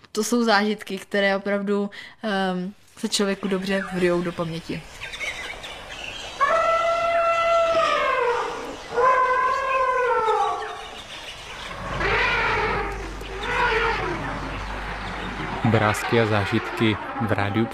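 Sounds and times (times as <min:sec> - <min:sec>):
speech: 0:00.2 - 0:05.2, 0:15.7 - 0:17.7
low rumbling outdoor background: 0:00.2 - 0:17.7
elephants trumpeting at a waterhole: 0:05.5 - 0:17.7.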